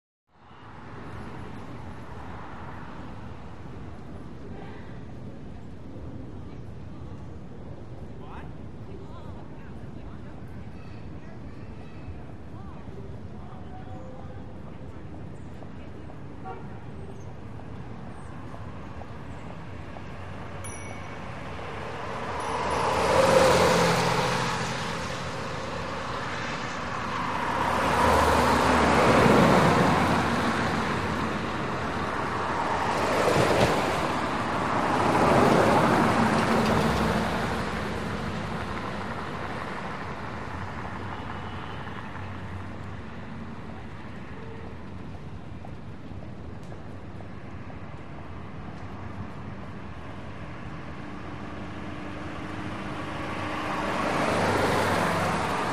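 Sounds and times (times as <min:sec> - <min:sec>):
car passing by from left to right: 0:21.4 - 0:43.3, 0:50.4 - 0:55.7.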